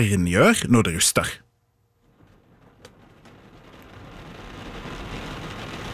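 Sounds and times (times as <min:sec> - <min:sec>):
speech: 0:00.0 - 0:01.4
steady rain hissing: 0:01.9 - 0:05.9.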